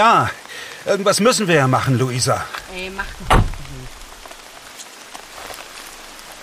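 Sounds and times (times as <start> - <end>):
speech: 0.0 - 3.9
steady rain on a hard surface in the dark: 0.0 - 6.4.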